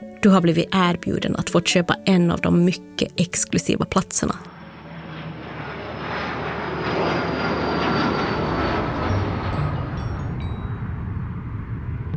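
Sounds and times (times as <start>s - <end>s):
speech: 0.2s - 4.6s
arriving airplane engines roaring with a high whine: 3.6s - 12.1s.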